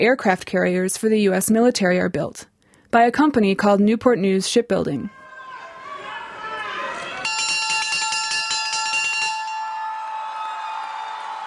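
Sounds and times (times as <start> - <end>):
speech: 0.0 - 5.2
ship's bell being rung at ceremony: 7.2 - 10.6.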